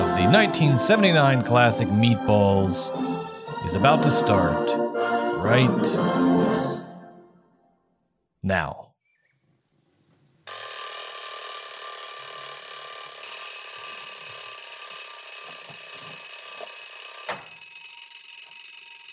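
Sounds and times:
speech: 0:00.2 - 0:06.7, 0:08.4 - 0:08.8
mechanical alarm clock bell ringing: 0:10.5 - 0:19.1.

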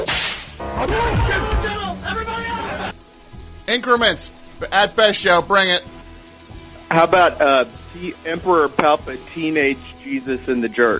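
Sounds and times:
whip crack: 0:00.0 - 0:00.6
speech: 0:00.8 - 0:02.9, 0:03.7 - 0:05.9, 0:06.9 - 0:10.9.

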